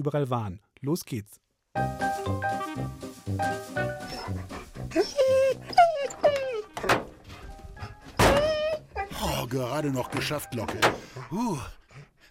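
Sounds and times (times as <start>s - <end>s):
speech: 0.0s - 5.9s, 9.4s - 11.8s
shuffling movement: 1.9s - 6.5s
dog whining and yipping excitedly: 4.0s - 9.1s.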